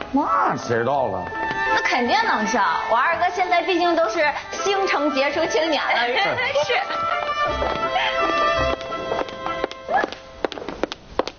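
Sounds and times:
speech: 0.1s - 8.3s
donkey hooves clip-clopping: 6.4s - 11.3s.

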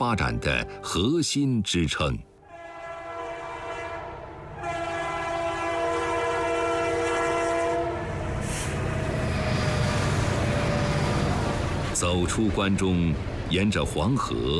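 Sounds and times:
speech: 0.0s - 2.3s, 12.1s - 14.5s
high-speed electric train passing: 1.9s - 14.5s
high-speed electric train horn blast: 2.4s - 9.4s.

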